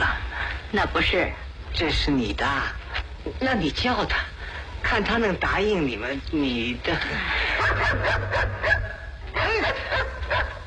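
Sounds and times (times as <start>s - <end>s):
speech: 0.7s - 8.8s
dog barking while chasing someone: 7.6s - 10.6s.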